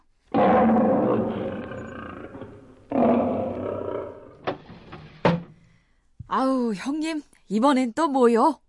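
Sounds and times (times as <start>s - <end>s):
tiger roaring: 0.3s - 4.5s
speech: 6.3s - 8.6s.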